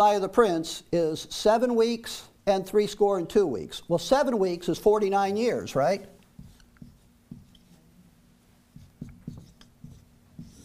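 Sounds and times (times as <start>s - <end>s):
speech: 0.0s - 6.1s
pen writing on paper: 6.4s - 7.8s, 8.8s - 10.6s.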